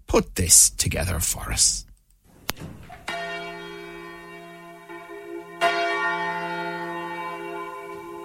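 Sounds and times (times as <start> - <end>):
speech: 0.2 - 1.9, 2.6 - 2.8
deep tenor church bell ringing in cathedral: 2.6 - 8.2.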